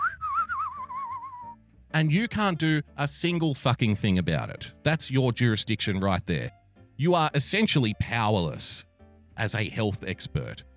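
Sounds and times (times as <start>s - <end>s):
person whistling a short wavering tune: 0.0s - 1.6s
speech: 2.0s - 10.7s.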